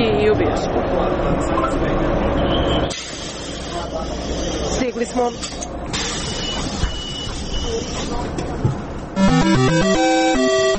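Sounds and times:
city bus engine and road rumble inside a moving bus: 0.0 - 9.2
speech: 0.4 - 3.1, 3.9 - 5.8, 7.7 - 8.7, 9.4 - 10.7.

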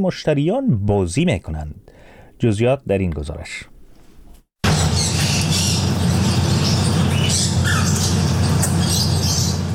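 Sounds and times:
speech: 0.0 - 3.7
canaries and parrots squawking and chirping in a tea house: 4.7 - 9.7.

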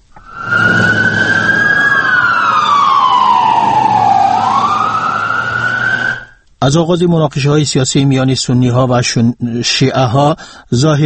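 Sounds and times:
emergency vehicle engine rumbling in Baghdad: 0.0 - 6.3
emergency vehicle siren wailing after bombings in Baghdad: 0.1 - 6.4
speech: 6.6 - 11.0.

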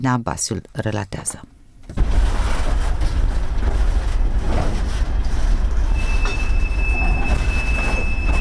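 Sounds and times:
speech: 0.0 - 2.0
train rolling on rails at a railway depot in Chișinău: 2.0 - 8.3
steady high train wheel squeal: 5.8 - 8.3.

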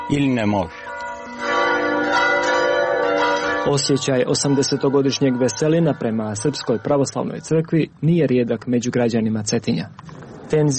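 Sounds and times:
Serbian Orthodox church bells ringing in Cetinje, Montenegro: 0.0 - 8.0
speech: 0.1 - 0.8, 3.6 - 10.7.

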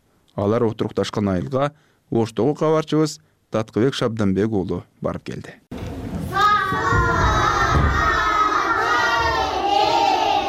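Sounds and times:
speech: 0.4 - 5.6
first-grade schoolchildren shouting together in a classroom: 6.2 - 10.4.

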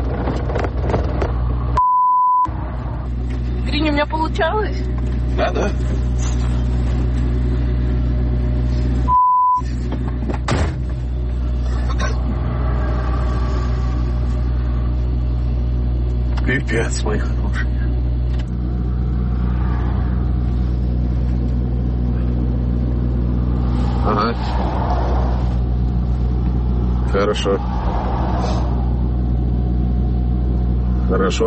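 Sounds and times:
car engine starting and revving: 0.0 - 1.8, 2.5 - 9.1, 9.7 - 31.4
short electronic beeps: 1.8 - 2.5, 9.1 - 9.7
speech: 3.8 - 6.4, 16.5 - 17.8, 24.1 - 24.9, 27.1 - 27.7, 31.1 - 31.4.

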